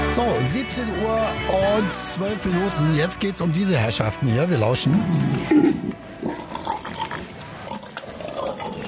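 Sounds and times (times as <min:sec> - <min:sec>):
speech: 0:00.2 - 0:06.4
outdoor noise: 0:04.9 - 0:08.8
wild boars grunting and snuffling: 0:04.9 - 0:08.8.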